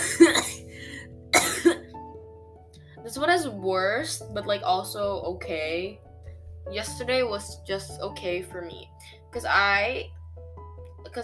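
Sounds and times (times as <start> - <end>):
person coughing: 0.0 - 1.9
speech: 3.1 - 10.2, 11.1 - 11.2.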